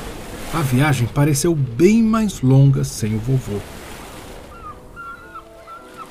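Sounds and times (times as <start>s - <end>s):
ship pushing through rough ocean water: 0.0s - 6.1s
speech: 0.5s - 3.8s
faint warbling horn-like tones: 4.4s - 6.1s.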